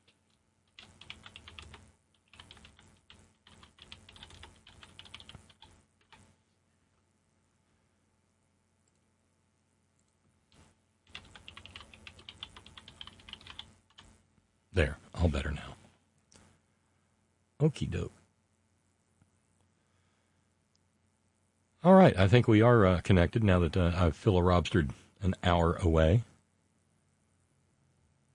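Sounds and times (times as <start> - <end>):
typing on a computer keyboard: 0.0 - 6.3, 11.1 - 14.1
speech: 14.8 - 15.8, 17.6 - 18.2, 22.1 - 26.3.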